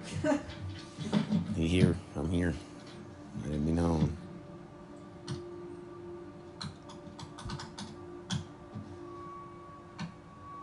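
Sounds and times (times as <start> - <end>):
quiet humming background: 0.0 - 10.6
speech: 0.2 - 0.6, 1.6 - 2.7, 3.4 - 4.2
hard typing on a computer keyboard: 6.6 - 8.5.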